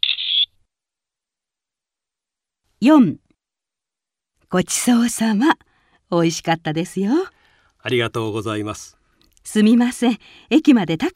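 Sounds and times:
electronic camera shutter chirp taking a photo of diners: 0.0s - 0.5s
speech: 2.8s - 3.2s, 4.5s - 11.1s.

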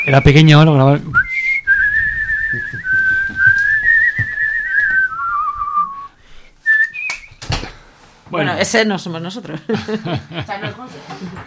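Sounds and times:
speech: 0.0s - 1.2s, 8.3s - 11.4s
person whistling a tune: 1.1s - 7.4s
laughter: 9.4s - 11.4s.

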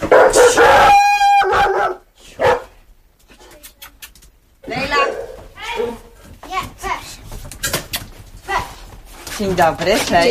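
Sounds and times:
dogs barking at a house as visitors arrive: 0.0s - 2.8s, 4.7s - 6.1s
speech: 9.4s - 10.2s.

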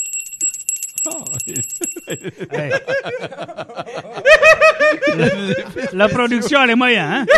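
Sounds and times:
bell ringing at a hotel room door: 0.0s - 2.4s
speech: 1.0s - 7.3s
laughter and chuckling: 1.2s - 7.3s.

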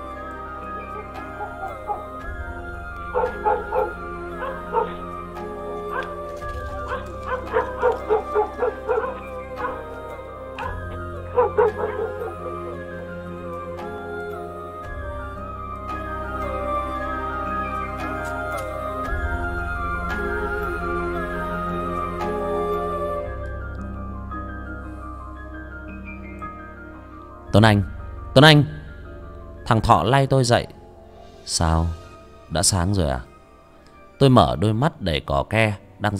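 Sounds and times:
sustained soft musical backdrop: 0.0s - 36.1s
dogs barking in a village: 0.6s - 2.3s, 3.0s - 13.4s
speech: 3.1s - 4.0s, 27.6s - 28.8s, 29.7s - 30.8s, 31.4s - 33.3s, 34.2s - 36.1s.

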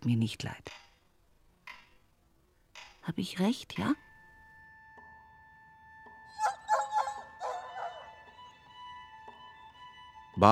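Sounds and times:
speech: 0.0s - 0.8s, 3.1s - 4.0s
dogs barking and yipping as they try to leap over town walls: 6.3s - 8.4s.

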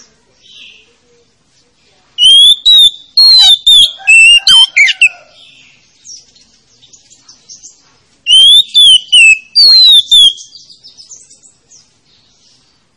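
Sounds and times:
Oriental magpie-robin song: 2.2s - 5.2s, 6.0s - 12.4s.

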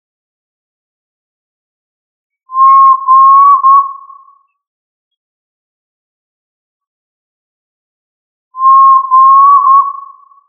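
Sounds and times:
Tinamidae tinamou whistles: 2.5s - 4.4s, 8.6s - 10.4s.

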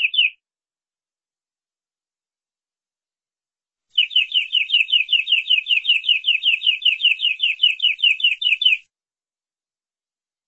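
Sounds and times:
canary singing: 0.0s - 0.4s, 4.0s - 8.9s.

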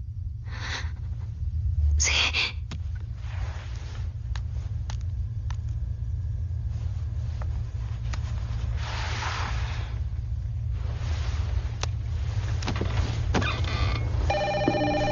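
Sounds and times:
low rumble: 0.0s - 13.3s
speech: 2.0s - 2.6s
telephone ringing on a private office line: 14.3s - 15.1s.

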